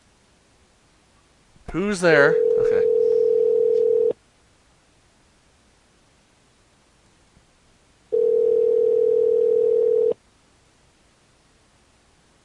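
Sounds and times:
speech: 0:01.7 - 0:03.0
telephone dial tone while placing a call: 0:02.4 - 0:04.2, 0:08.1 - 0:10.2.

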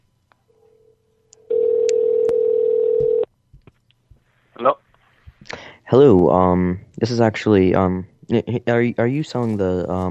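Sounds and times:
telephone line tone buzzing: 0:00.6 - 0:03.3
speech: 0:05.9 - 0:10.0.

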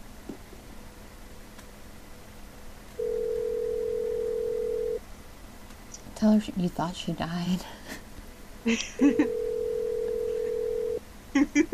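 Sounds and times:
telephone ringback tone over a phone line: 0:03.0 - 0:05.0, 0:09.2 - 0:11.0
speech: 0:06.2 - 0:08.0, 0:08.6 - 0:09.4.

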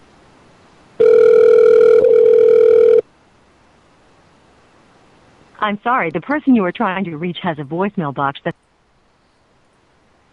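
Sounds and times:
telephone line ringback tone: 0:01.0 - 0:03.0
speech: 0:05.6 - 0:08.6.

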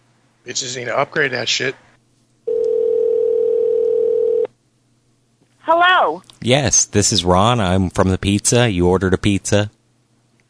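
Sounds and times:
speech: 0:00.4 - 0:01.9, 0:05.7 - 0:09.8
telephone dial tone: 0:02.5 - 0:04.5.

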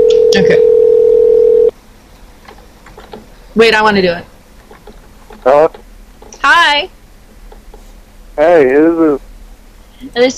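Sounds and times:
telephone dial tone while placing a call: 0:00.0 - 0:01.7
speech: 0:00.4 - 0:00.7, 0:03.6 - 0:04.3, 0:05.4 - 0:05.8, 0:06.5 - 0:07.0, 0:08.4 - 0:09.2, 0:10.0 - 0:10.3.

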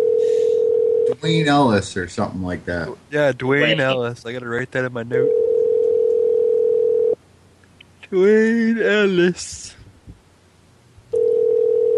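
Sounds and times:
ringing tone on a telephone line during a call: 0:00.0 - 0:01.1, 0:05.2 - 0:07.2, 0:11.1 - 0:11.9
speech: 0:01.2 - 0:05.4, 0:08.1 - 0:09.8.

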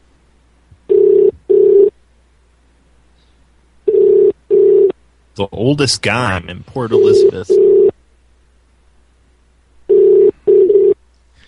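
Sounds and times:
telephone ringing tone on the line: 0:00.9 - 0:01.9, 0:03.9 - 0:04.9, 0:06.9 - 0:07.9, 0:09.9 - 0:11.0
speech: 0:05.4 - 0:07.9.

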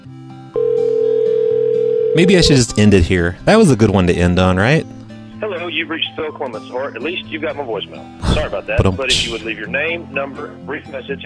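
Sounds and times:
loud steady unbroken telephone line tone after the caller hangs up: 0:00.5 - 0:02.4
speech: 0:02.1 - 0:05.0, 0:05.8 - 0:11.2.

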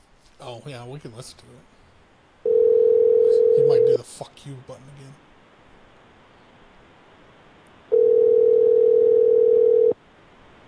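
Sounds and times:
speech: 0:00.4 - 0:01.8, 0:03.6 - 0:05.3
telephone dial tone while calling someone back: 0:02.5 - 0:03.9, 0:07.9 - 0:10.0.

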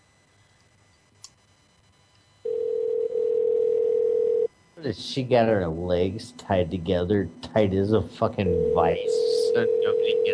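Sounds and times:
telephone dial tone while placing a call: 0:02.5 - 0:04.5
speech: 0:04.8 - 0:10.3.

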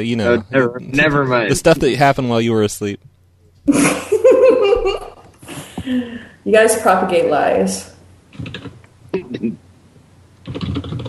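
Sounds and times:
speech: 0:00.0 - 0:04.1, 0:05.9 - 0:08.7
laughter: 0:03.7 - 0:06.1
fingers typing on a computer keyboard: 0:08.4 - 0:08.8, 0:10.4 - 0:11.0.

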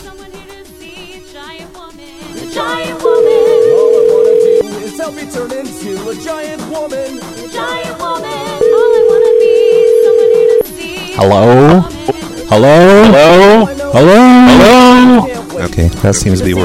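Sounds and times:
ringing tones of an outgoing call to a cell phone: 0:02.5 - 0:04.8, 0:08.1 - 0:11.8
telephone dial tone: 0:03.0 - 0:04.7, 0:08.6 - 0:10.7
speech: 0:05.1 - 0:08.7, 0:11.2 - 0:16.6.

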